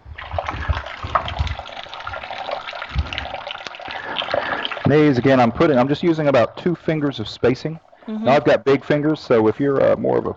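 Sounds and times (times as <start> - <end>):
soft low knocks: 0.0 - 3.6
kitchen tap water running over a spoon during cooking: 0.0 - 6.8
speech: 4.9 - 10.3.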